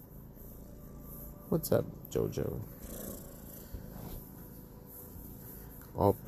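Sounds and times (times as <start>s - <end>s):
speech: 1.5s - 3.0s, 6.0s - 6.2s
female cat purring: 2.0s - 5.4s.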